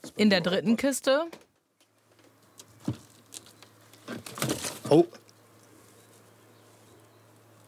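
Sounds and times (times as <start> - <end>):
speech: 0.2 - 1.5, 4.9 - 5.2
jackdaw nestlings scrabbling and rustling in a nest box: 1.8 - 7.6.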